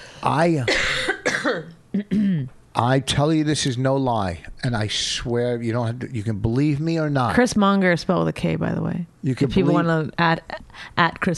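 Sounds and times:
speech: 0.2 - 11.3
harsh voiced coughing: 0.6 - 2.5.

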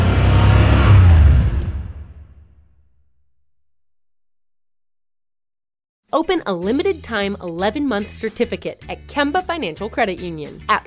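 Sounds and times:
car engine revving: 0.0 - 3.1
speech: 6.2 - 10.8.

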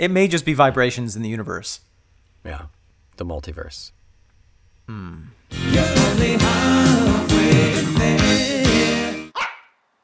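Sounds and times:
speech: 0.0 - 4.0, 4.9 - 9.0
dog barking in a dog pound: 9.4 - 9.8.

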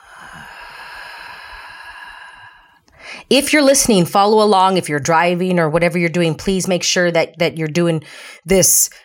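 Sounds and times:
long breathing inhale and exhale: 0.0 - 3.3
speech: 3.3 - 9.0.

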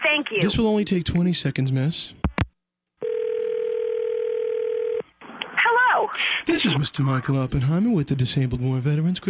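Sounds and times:
speech: 0.2 - 2.2, 6.2 - 9.2
telephone tone through a call line to a cell phone: 3.0 - 5.0.

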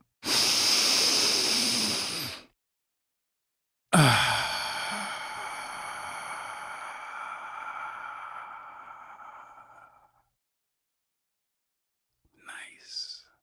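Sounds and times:
deep breaths drawn through the mouth: 0.2 - 2.5, 4.0 - 10.2.

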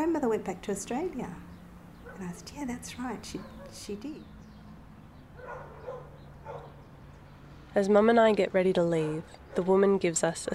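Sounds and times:
speech: 0.2 - 1.5, 2.2 - 4.4, 7.7 - 10.5
two old dogs barking: 2.0 - 2.5, 3.2 - 4.0, 5.3 - 6.8, 9.4 - 9.8.

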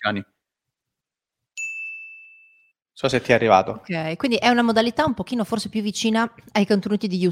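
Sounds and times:
speech: 0.0 - 0.3, 3.0 - 7.3
bright ding chime: 1.6 - 2.7.

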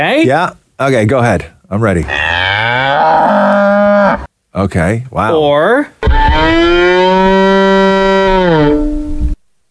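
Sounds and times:
speech: 0.0 - 3.4, 4.2 - 6.0
violin imitating a cow's moo: 6.0 - 9.3.

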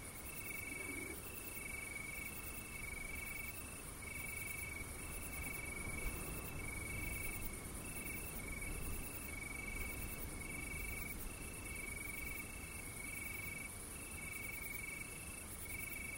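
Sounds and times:
crickets chirping at night: 0.0 - 16.1
low continuous rumble of wind: 4.4 - 12.6.

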